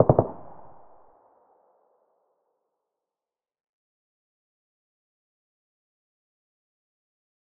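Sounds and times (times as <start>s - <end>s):
AK-74 assault rifle short burst: 0.0s - 0.8s.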